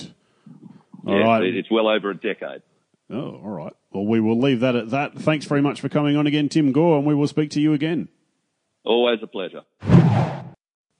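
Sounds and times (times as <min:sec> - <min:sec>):
speech: 0:01.0 - 0:08.2, 0:08.8 - 0:10.3
whoosh transition effect: 0:09.8 - 0:10.6.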